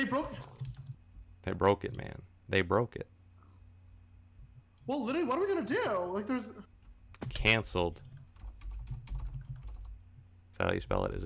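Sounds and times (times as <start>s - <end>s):
speech: 0.0s - 0.5s, 1.4s - 3.2s, 4.9s - 8.1s, 10.6s - 11.2s
clacking of keys on a computer keyboard: 0.5s - 1.0s, 8.0s - 10.0s.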